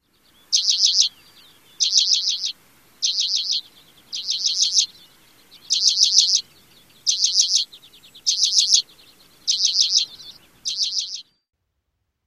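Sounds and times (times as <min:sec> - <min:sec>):
bird repeating a dry buzzy rattling trill: 0:00.5 - 0:01.1, 0:01.8 - 0:04.9, 0:05.7 - 0:11.2.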